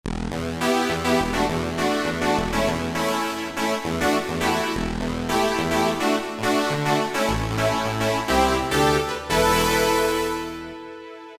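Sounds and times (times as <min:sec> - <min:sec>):
Roland SR-JV80-01 Pop poly synth: 0:00.1 - 0:11.3.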